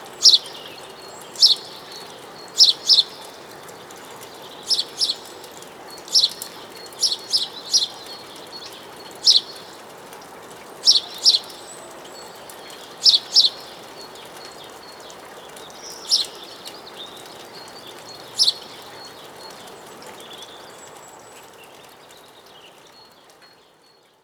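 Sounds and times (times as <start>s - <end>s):
house sparrow (Passer domesticus) chirping: 0.1s - 9.8s, 10.8s - 19.4s.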